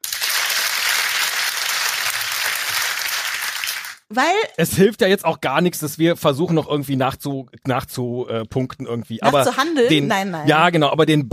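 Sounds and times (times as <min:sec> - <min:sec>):
crowd applauding: 0:00.0 - 0:04.1
speech: 0:04.1 - 0:11.3.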